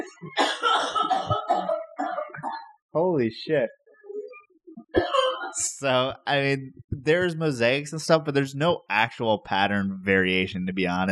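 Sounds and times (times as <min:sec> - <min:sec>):
woman coughing: 0:00.3 - 0:02.7, 0:05.0 - 0:05.6
speech: 0:03.0 - 0:03.8, 0:05.6 - 0:11.1.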